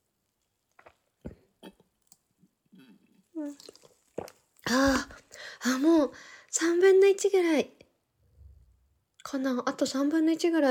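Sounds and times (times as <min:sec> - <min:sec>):
sipping and swallowing a carbonated drink: 0:02.7 - 0:05.0
speech: 0:03.4 - 0:03.9, 0:05.6 - 0:07.8, 0:09.3 - 0:10.6.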